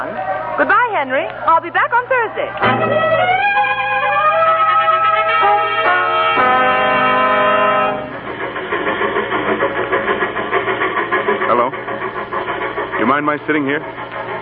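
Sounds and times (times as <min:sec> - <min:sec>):
speech: 0:00.0 - 0:04.2, 0:13.0 - 0:14.1
steady rhythmic rumble and clatter of train wheels on rails: 0:01.8 - 0:14.4
loud sustained train horn blast: 0:02.6 - 0:08.2.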